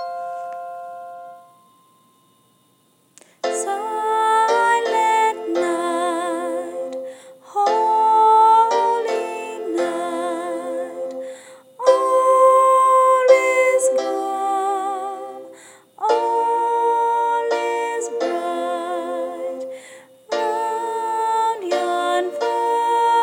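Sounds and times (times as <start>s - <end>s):
soprano singing: 3.5s - 23.2s.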